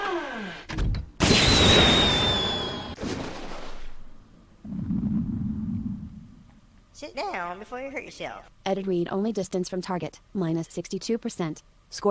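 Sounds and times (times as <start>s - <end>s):
missile launch in a turn-based artillery video game: 1.2s - 3.0s
low steady rumbling noise: 4.0s - 7.0s
speech: 7.0s - 12.0s.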